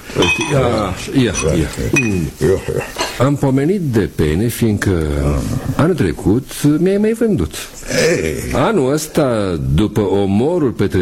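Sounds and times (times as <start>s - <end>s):
glasses clinking as drinks are poured: 0.0s - 3.2s
speech: 0.2s - 11.0s.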